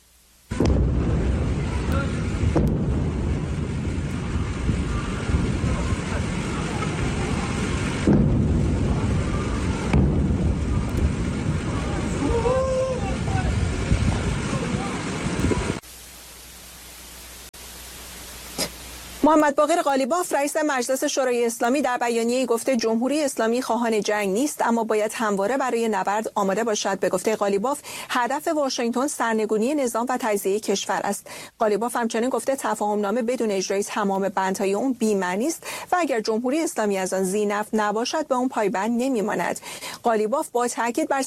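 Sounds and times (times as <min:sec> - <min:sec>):
constant roaring wind-like rumble: 0:00.5 - 0:15.8
deep booming explosions at dawn: 0:00.5 - 0:15.8
speech: 0:19.3 - 0:41.2.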